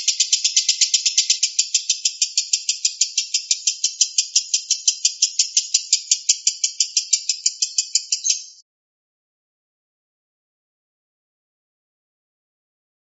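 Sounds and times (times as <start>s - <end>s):
lovebird giving shrill rasping pulses in konslet song style: 0.0s - 8.6s.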